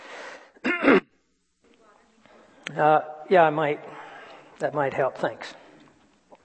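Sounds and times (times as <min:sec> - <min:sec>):
sharp harsh cough-like burst: 0:00.6 - 0:01.1
throat clearing: 0:00.6 - 0:01.1
speech: 0:02.8 - 0:03.9, 0:04.6 - 0:05.6.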